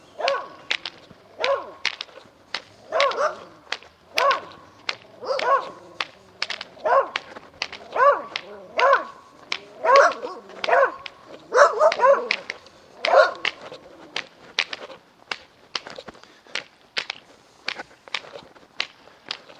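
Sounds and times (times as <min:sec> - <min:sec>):
several dogs barking at a passerby: 0:00.1 - 0:02.0, 0:02.7 - 0:14.1.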